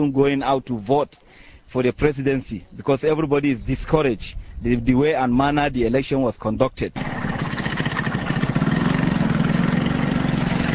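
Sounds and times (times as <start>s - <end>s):
speech: 0.0s - 7.1s
small motorcycle taxi engines idling at a motorcycle taxi stand: 7.0s - 10.7s.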